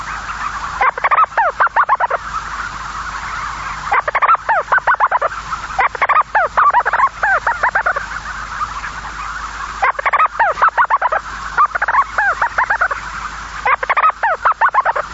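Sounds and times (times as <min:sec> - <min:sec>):
constant hiss: 0:00.0 - 0:15.1
storm petrel giving rapid rattling series of falling notes: 0:00.5 - 0:15.1.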